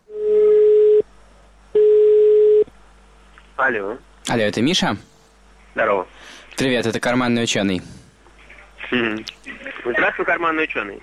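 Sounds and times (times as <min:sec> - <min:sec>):
telephone ringing tone on an international call to Finland: 0:00.1 - 0:01.0, 0:01.8 - 0:02.7
speech: 0:03.7 - 0:05.1, 0:05.8 - 0:06.0, 0:06.6 - 0:08.0, 0:08.9 - 0:11.0.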